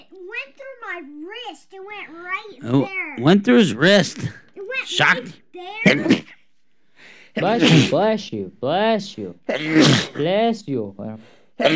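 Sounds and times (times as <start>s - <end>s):
speech: 0.0s - 6.4s, 7.4s - 11.7s
person sneezing: 5.9s - 6.4s, 7.4s - 8.1s, 9.5s - 10.3s, 11.6s - 11.7s.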